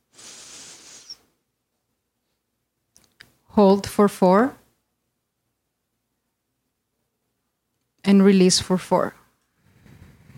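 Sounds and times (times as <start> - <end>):
deep inhale during a breathing exercise: 0.0 - 1.2
speech: 3.6 - 4.6, 8.1 - 9.2.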